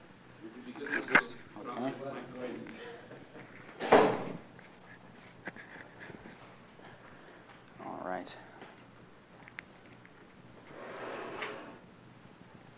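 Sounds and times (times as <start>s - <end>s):
faint noise: 0.0s - 12.7s
door swinging shut with a solid thud: 3.8s - 4.4s.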